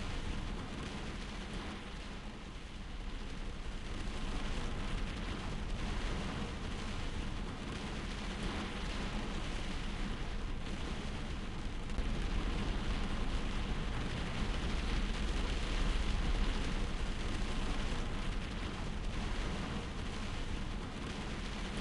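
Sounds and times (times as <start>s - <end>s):
heavy rain beating against a window: 0.0s - 21.7s.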